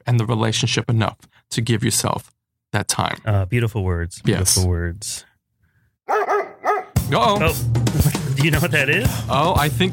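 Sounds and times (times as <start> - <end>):
speech: 0.0 - 5.3, 7.1 - 9.9
dog barking: 6.1 - 7.0.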